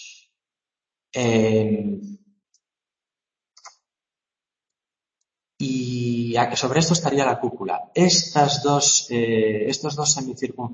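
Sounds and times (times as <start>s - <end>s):
speech: 1.2s - 2.2s, 5.6s - 10.7s
computer mouse clicking while someone draws with the mouse: 3.6s - 3.8s.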